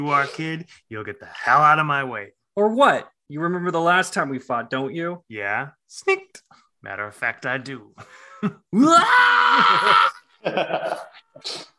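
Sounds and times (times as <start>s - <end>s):
speech: 0.0s - 11.7s
person screaming from inside a room: 8.7s - 10.3s
person yelping: 8.7s - 10.3s
anguished cries: 8.7s - 11.1s
laughter: 9.4s - 11.3s.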